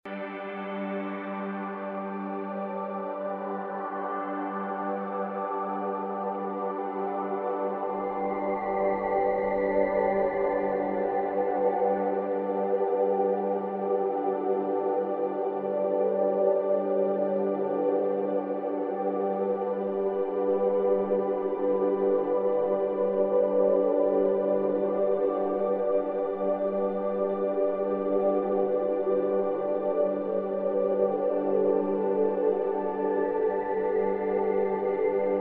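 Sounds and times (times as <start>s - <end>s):
light warm atmospheric ambient soundscape blend: 0.1s - 35.3s.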